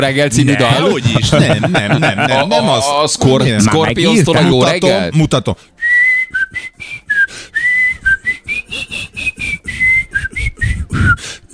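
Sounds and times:
speech: 0.0s - 5.8s
laughter: 0.6s - 2.9s
person whistling a melody: 5.8s - 11.5s.

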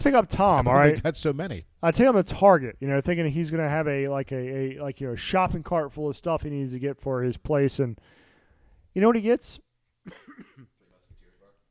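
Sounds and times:
speech: 0.0s - 8.2s, 9.0s - 10.5s
muffled throaty coughs: 10.0s - 10.8s.

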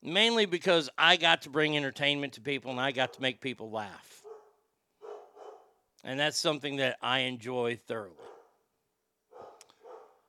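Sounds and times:
speech: 0.0s - 4.2s, 6.0s - 8.3s
dog barks: 4.2s - 5.8s, 8.2s - 8.6s, 9.3s - 10.2s.

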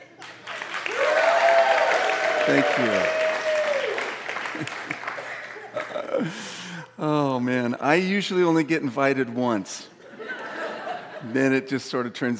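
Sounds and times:
audience clapping: 0.0s - 6.3s
speech: 2.5s - 3.2s, 4.6s - 4.8s, 6.2s - 9.9s, 11.2s - 12.3s
laughter: 4.4s - 6.7s, 10.0s - 11.7s.

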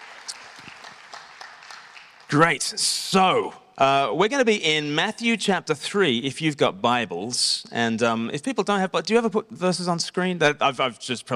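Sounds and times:
audience applause: 0.0s - 2.7s
speech: 2.3s - 11.3s.

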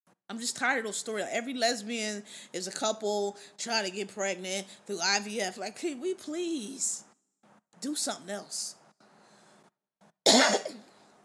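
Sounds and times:
speech: 0.3s - 7.1s, 7.8s - 8.8s
sharp cough from a dry throat: 10.3s - 10.9s.

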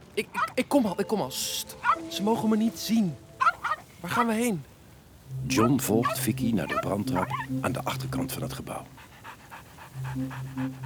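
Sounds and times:
speech: 0.2s - 3.2s, 4.0s - 4.7s, 5.3s - 9.1s, 10.0s - 10.8s
dog panting rapidly: 3.4s - 4.3s, 5.5s - 10.8s.

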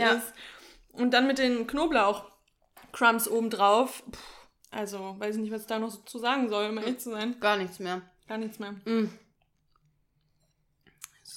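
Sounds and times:
speech: 0.0s - 2.3s, 2.9s - 9.2s
person chewing food: 2.3s - 2.8s, 9.3s - 11.3s.

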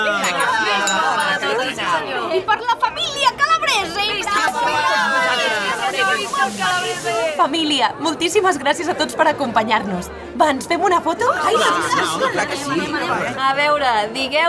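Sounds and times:
several glasses clinking together in a toast: 0.0s - 2.0s
lively group chatter of children and adults: 0.0s - 14.4s
speech: 1.7s - 4.8s, 6.4s - 14.4s.

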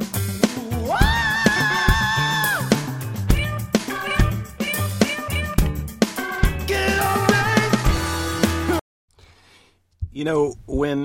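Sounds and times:
driving music with a steady beat: 0.0s - 8.8s
man screaming loudly: 0.7s - 2.8s
speech: 10.2s - 11.0s.

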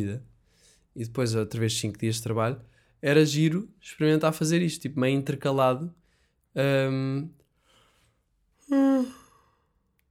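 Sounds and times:
speech: 0.0s - 0.3s, 1.0s - 6.0s, 6.6s - 7.4s, 8.7s - 9.2s
voiced yawn: 8.6s - 9.5s.

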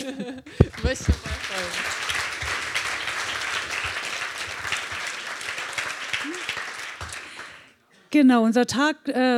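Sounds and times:
laughter: 0.0s - 4.2s
speech: 0.2s - 2.0s, 8.1s - 9.3s
audience applause at the end of an event: 0.6s - 7.7s.

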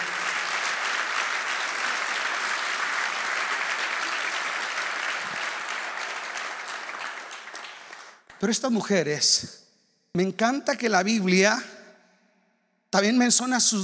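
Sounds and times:
audience applauding: 0.0s - 8.5s
speech: 8.4s - 9.6s, 10.2s - 11.7s, 12.9s - 13.8s.

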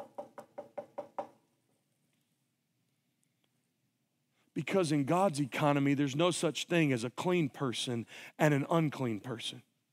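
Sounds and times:
knocking on a wooden door: 0.0s - 1.4s
speech: 4.6s - 9.7s.

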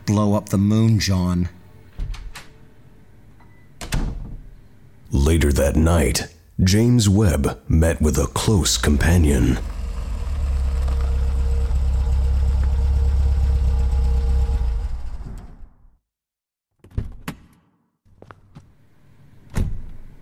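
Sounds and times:
speech: 0.1s - 1.6s, 5.3s - 9.7s
car engine idling with a steady low rumble: 8.4s - 15.3s
rattles: 9.5s - 15.6s.

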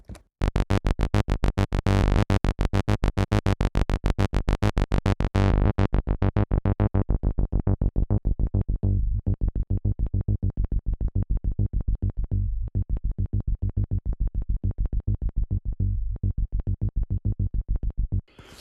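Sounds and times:
low-pass filtered sawtooth and square wave synth bass: 0.4s - 18.3s.

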